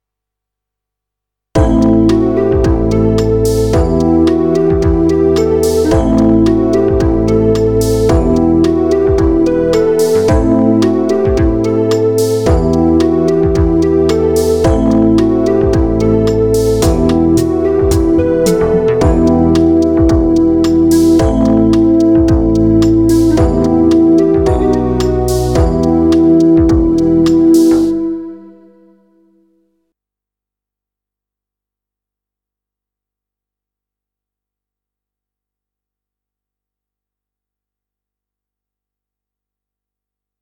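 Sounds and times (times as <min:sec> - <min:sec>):
synth riff in E minor: 0:01.6 - 0:28.7.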